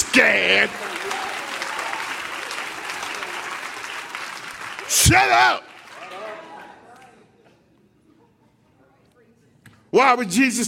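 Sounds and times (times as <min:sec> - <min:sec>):
congregation clapping their hands in applause: 0:00.0 - 0:07.0
speech: 0:00.2 - 0:01.3, 0:05.0 - 0:05.7, 0:09.9 - 0:10.6.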